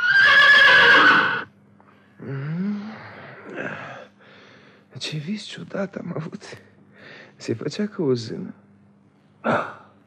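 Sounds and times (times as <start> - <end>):
horse neighing loudly in a long bright whinny: 0.0 - 1.5
speech: 5.0 - 6.7, 7.4 - 8.6, 9.4 - 9.8.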